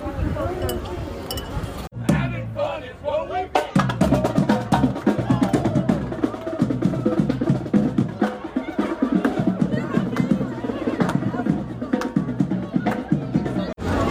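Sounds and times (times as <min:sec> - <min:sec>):
murmur of a busy chattering crowd: 0:00.0 - 0:14.0
glasses of lemonade clinking in a toast: 0:00.6 - 0:01.7.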